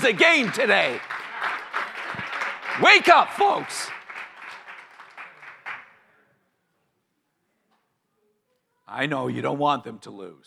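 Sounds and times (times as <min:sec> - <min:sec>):
speech: 0:00.0 - 0:01.2, 0:02.8 - 0:04.0, 0:08.9 - 0:10.4
crowd clapping: 0:00.0 - 0:06.1.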